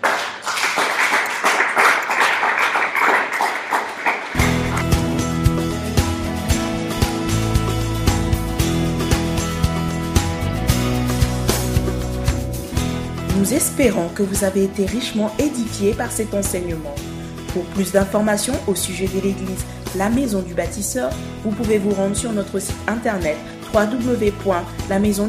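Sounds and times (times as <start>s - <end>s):
church congregation applauding and cheering: 0.0s - 5.4s
loud music with punchy drum hits and sustained tones: 4.4s - 13.3s
speech: 13.8s - 25.2s.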